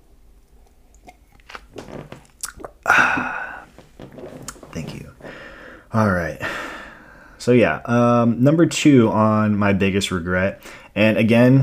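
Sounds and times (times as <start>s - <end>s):
mouth clicks and smacks: 0.5s - 5.1s
wet slurp: 2.3s - 2.8s
speech: 5.9s - 6.5s, 7.4s - 11.6s.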